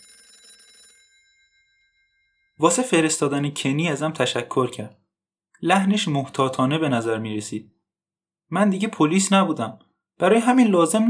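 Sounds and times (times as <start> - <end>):
telephone bell ringing in a rapid metallic trill: 0.0 - 2.6
speech: 2.6 - 5.0, 5.6 - 7.8, 8.5 - 11.0.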